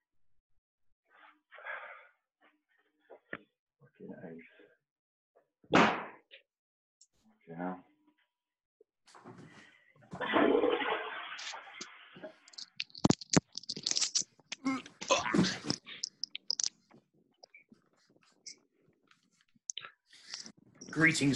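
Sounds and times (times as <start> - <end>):
toilet flushing with rushing water: 10.1 - 12.2
clicks, knocks and handling noises: 11.4 - 11.6, 12.4 - 21.0
speech: 21.0 - 21.3.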